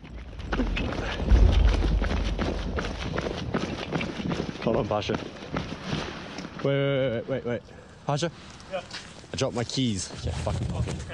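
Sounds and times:
low rumble: 0.0 - 4.6
people running footsteps through a housing estate: 0.0 - 6.7
speech: 4.8 - 5.5, 6.6 - 11.1.

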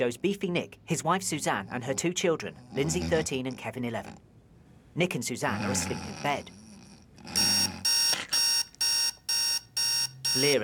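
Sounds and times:
speech: 0.0 - 4.4, 5.0 - 6.6, 10.3 - 10.6
alarm clock ringing in electronic beeps: 7.4 - 10.6.

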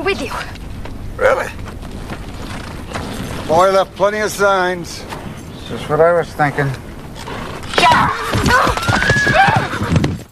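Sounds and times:
horse hooves clattering: 0.0 - 10.3
speech: 0.1 - 0.6, 1.2 - 1.6, 3.5 - 5.1, 5.7 - 6.8
agitated horse whinnying: 7.2 - 10.3.

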